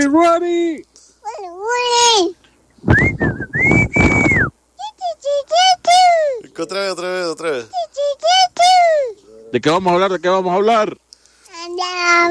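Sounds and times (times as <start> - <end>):
speech: 0.0 - 3.4, 5.5 - 11.0, 11.6 - 12.2
high childish vocal sounds of a young girl: 1.2 - 2.4, 4.8 - 6.6, 7.7 - 9.4, 11.5 - 12.2
young girl whistling imitating a whistle signal: 2.9 - 4.5.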